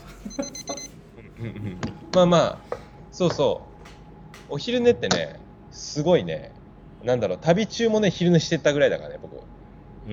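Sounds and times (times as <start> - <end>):
laughter: 0.0 - 3.6
speech: 0.2 - 0.8, 1.4 - 3.7, 4.5 - 10.1
timer alarm with high-pitched electronic beeps: 0.2 - 1.0.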